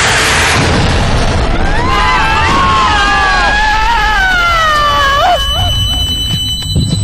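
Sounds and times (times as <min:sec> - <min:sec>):
artillery shell explosion: 0:00.0 - 0:06.8
high descending whistling tones: 0:01.6 - 0:07.0.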